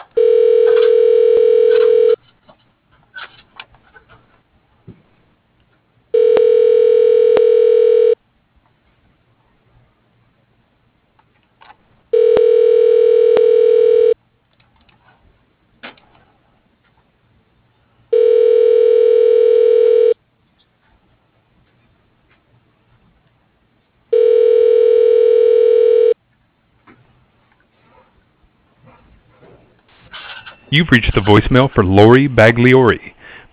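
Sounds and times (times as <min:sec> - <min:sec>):
office telephone ringing tones connecting to an extension: 0:00.1 - 0:02.2, 0:06.1 - 0:08.2, 0:12.1 - 0:14.2, 0:18.1 - 0:20.2, 0:24.1 - 0:26.2
speech: 0:30.8 - 0:33.1.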